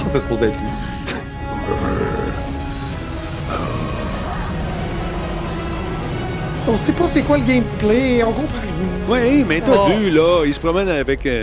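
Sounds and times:
speech: 0:00.1 - 0:00.9, 0:01.7 - 0:02.1, 0:06.7 - 0:11.4
creature growling low and rough in a game trailer: 0:00.7 - 0:05.5.

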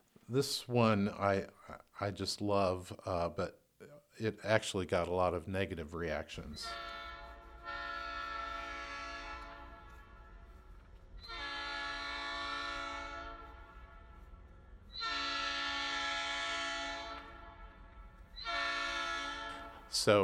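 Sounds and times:
speech: 0:00.3 - 0:07.0, 0:20.0 - 0:20.2
train horn blasts: 0:06.6 - 0:20.2.

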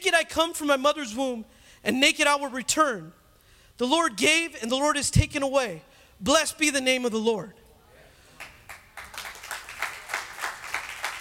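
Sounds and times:
speech: 0:00.0 - 0:03.2, 0:03.8 - 0:07.6
audience clapping in a steady rhythmic beat: 0:08.3 - 0:11.1.

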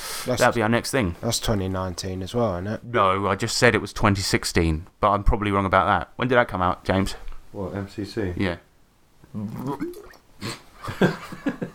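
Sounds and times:
speech: 0:00.2 - 0:08.7, 0:09.3 - 0:11.7
spitting noises: 0:09.3 - 0:10.7
person choking on a sip of drink and spitting it out: 0:09.4 - 0:10.3.

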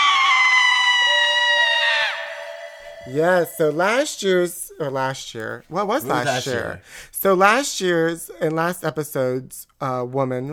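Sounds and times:
woman screaming: 0:00.0 - 0:03.8
speech: 0:03.0 - 0:10.5.

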